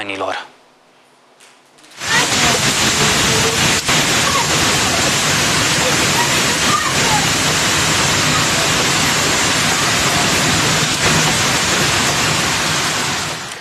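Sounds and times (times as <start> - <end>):
speech: 0.0 - 0.6
egg-sized hail pelting in a violent hailstorm: 1.9 - 13.5
heavy rain in a violent hailstorm: 1.9 - 13.5.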